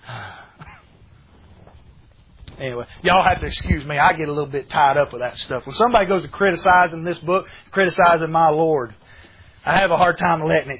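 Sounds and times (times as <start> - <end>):
heavy gasping breathing: 0.0 - 0.9, 9.0 - 9.7
speech: 2.6 - 10.7.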